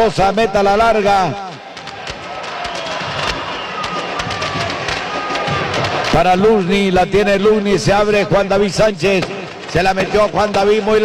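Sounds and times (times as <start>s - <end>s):
speech: 0.0s - 1.6s, 6.2s - 11.0s
fireworks exploding with sharp bangs and crackles during a football match: 1.5s - 7.2s, 9.1s - 11.0s.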